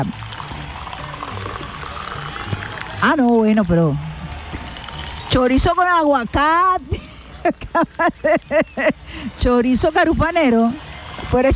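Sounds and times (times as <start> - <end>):
speech: 0.0 - 0.3, 3.0 - 4.1, 5.3 - 11.5
liquid pouring into a container while preparing coffee in Río Caribe: 0.0 - 6.8, 10.3 - 11.5
laughter: 6.9 - 9.3.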